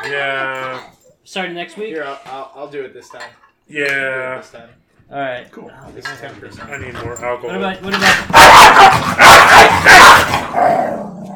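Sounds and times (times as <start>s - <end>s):
speech: 0.1s - 11.3s
dog barking loudly: 8.0s - 10.5s.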